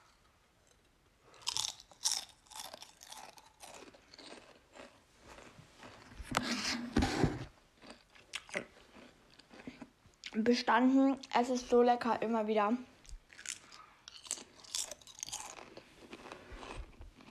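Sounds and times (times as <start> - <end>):
crunchy snack being chewed: 0.6 - 6.5, 7.8 - 10.4, 13.0 - 17.2
speech: 10.4 - 12.9.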